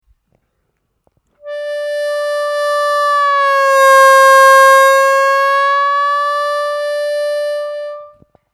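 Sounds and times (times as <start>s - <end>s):
harmonica note bend on the fourth hole: 1.4s - 8.2s.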